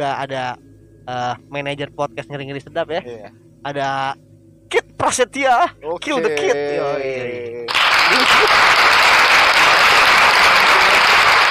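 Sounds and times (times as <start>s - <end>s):
speech: 0.0s - 8.9s
laughter: 6.0s - 11.4s
applause of many hands clapping: 7.7s - 11.4s.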